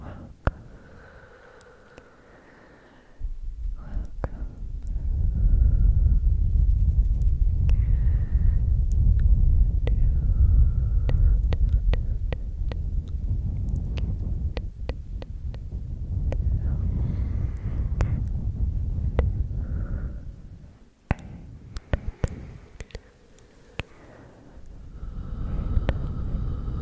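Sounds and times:
sharp mouth clicks: 0:00.0 - 0:02.2, 0:03.7 - 0:05.1, 0:08.8 - 0:18.4, 0:21.0 - 0:26.2
close bassy breathing and ear blowing: 0:00.0 - 0:06.9, 0:07.5 - 0:26.8
soft whispering: 0:00.0 - 0:26.8.

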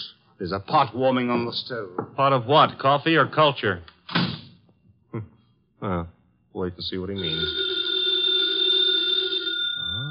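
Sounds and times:
speech: 0:00.4 - 0:03.9, 0:05.2 - 0:07.7
telephone bell ringing: 0:07.2 - 0:10.0.

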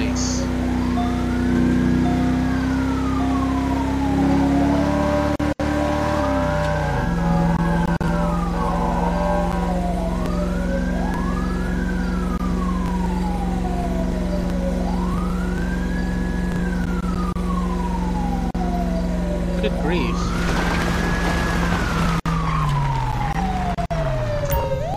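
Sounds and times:
emergency vehicle engine rumble: 0:00.0 - 0:24.9
emergency vehicle siren wailing: 0:00.0 - 0:24.9.

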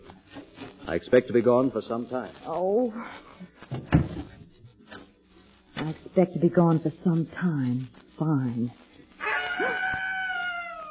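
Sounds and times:
speech: 0:00.9 - 0:03.3, 0:05.8 - 0:08.8
screech owl wavering cry: 0:09.2 - 0:10.8.

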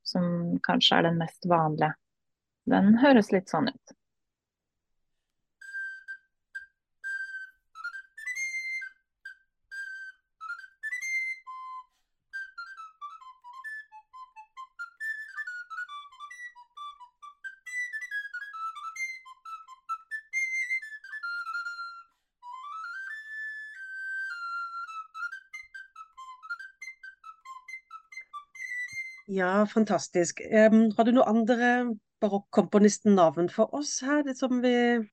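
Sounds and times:
speech: 0:00.1 - 0:02.0, 0:02.6 - 0:04.0, 0:29.3 - 0:35.1
soprano recorder playing a lively fast melody: 0:05.6 - 0:29.4.

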